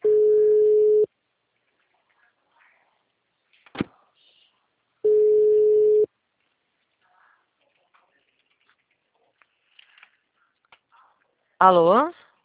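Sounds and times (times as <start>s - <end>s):
telephone ringback tones: 0.0s - 1.1s, 5.1s - 6.1s
speech: 11.6s - 12.2s.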